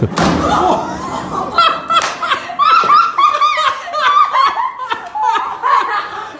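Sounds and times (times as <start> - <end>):
person smacking hard into a door: 0.0 - 3.1
laughter: 0.0 - 6.3.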